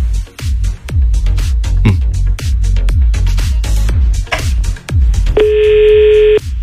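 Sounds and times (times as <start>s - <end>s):
thumping rhythmic beats and bass: 0.0s - 6.6s
steady electronic telephone tone: 5.4s - 6.4s.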